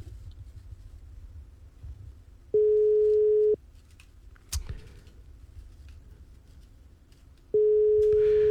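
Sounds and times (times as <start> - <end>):
telephone ringback tone of an unanswered call: 2.6 - 3.6, 7.6 - 8.4.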